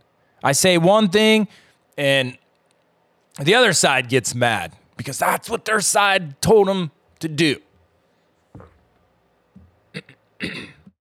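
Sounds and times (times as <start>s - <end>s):
speech: 0.4s - 2.4s, 3.4s - 7.6s, 10.0s - 10.7s
person clearing throat: 9.9s - 11.0s.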